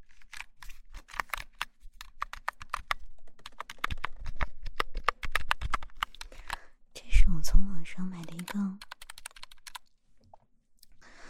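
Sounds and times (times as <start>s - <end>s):
soft plastic key presses on a small computer numeric keypad: 0.1s - 6.6s, 8.2s - 9.9s
speech: 7.8s - 8.9s.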